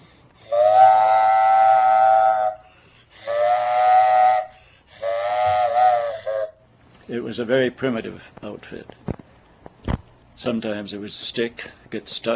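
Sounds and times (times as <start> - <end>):
child imitating a freight train whistle: 0.4 - 6.6
speech: 7.1 - 9.1, 10.4 - 12.3.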